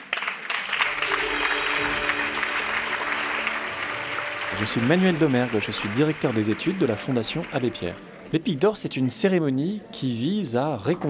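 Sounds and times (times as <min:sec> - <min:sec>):
audience applause after winners announced: 0:00.0 - 0:08.6
speech: 0:04.6 - 0:11.0.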